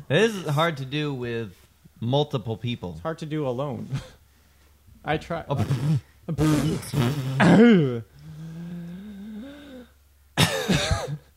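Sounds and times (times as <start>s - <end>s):
speech: 0.1s - 4.2s, 5.0s - 8.1s
person coughing into the microphone: 5.6s - 8.0s, 10.4s - 11.3s
drawn-out strained vocal groan: 6.6s - 9.9s.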